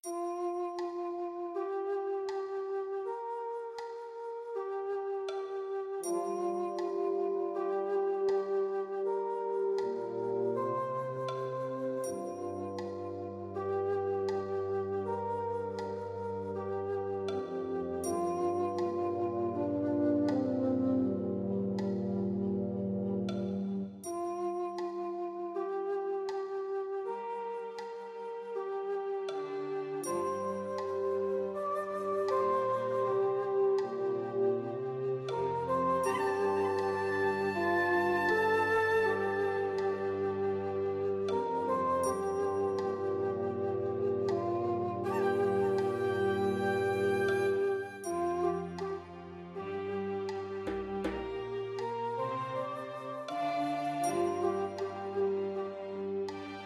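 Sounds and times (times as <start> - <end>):
oriental music: 0.0 - 56.6.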